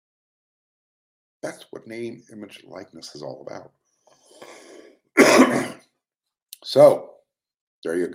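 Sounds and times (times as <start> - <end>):
speech: 1.4 - 3.8, 6.6 - 7.1, 7.8 - 8.1
harsh throaty cough: 5.2 - 5.9.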